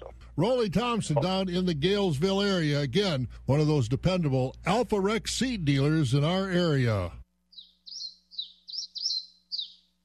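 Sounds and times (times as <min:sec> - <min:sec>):
faint low hum: 0:00.0 - 0:10.0
speech: 0:00.4 - 0:07.2
bird chirping in bright high tweets: 0:07.5 - 0:10.0.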